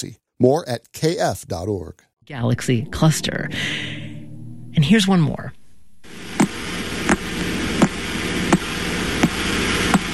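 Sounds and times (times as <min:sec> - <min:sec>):
speech: 0:00.0 - 0:03.9, 0:04.8 - 0:06.2
steady bed of hiss and low hum: 0:00.0 - 0:10.1
pulsar radio signal broadband ticks: 0:06.4 - 0:10.1.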